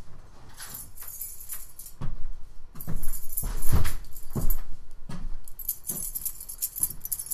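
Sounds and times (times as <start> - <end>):
bunch of keys jingling and clinking: 0.6 - 1.9, 2.8 - 4.7, 5.5 - 7.3.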